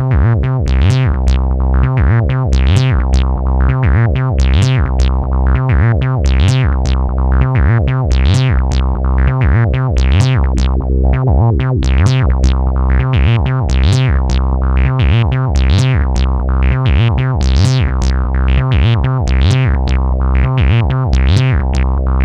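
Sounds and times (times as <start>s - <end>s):
synthesizer arpeggio: 0.1s - 22.2s.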